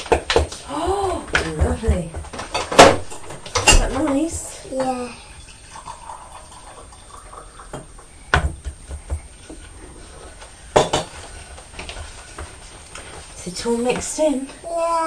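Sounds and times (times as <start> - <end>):
steady hiss: 0.0 - 15.0
speech: 4.0 - 5.2, 13.6 - 15.0
tea pouring into a cup: 4.4 - 8.4.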